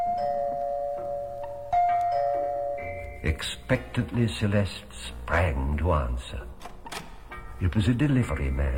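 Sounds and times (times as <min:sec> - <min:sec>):
doorbell chiming: 0:00.0 - 0:03.5
speech: 0:03.2 - 0:06.5, 0:07.6 - 0:08.7.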